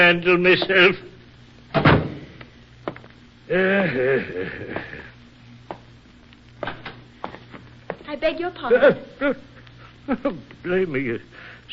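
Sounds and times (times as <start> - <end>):
speech: 0.0 - 1.1, 3.5 - 5.0, 8.1 - 9.5, 10.1 - 11.5
heavy door thudding shut: 1.7 - 2.2.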